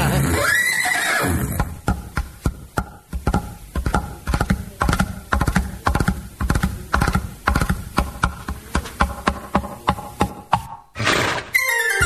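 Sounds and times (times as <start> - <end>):
horse whinnying: 0.0 - 1.8, 11.0 - 11.9
rapid sharp clopping beats: 1.3 - 11.7
short burst of noise: 11.0 - 11.6.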